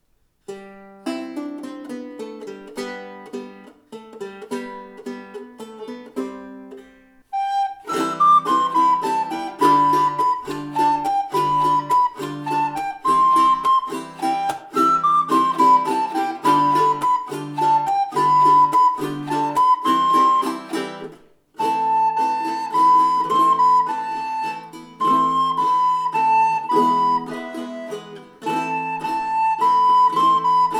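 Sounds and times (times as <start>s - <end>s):
baroque guitar: 0.4s - 30.7s
flute: 7.3s - 30.7s.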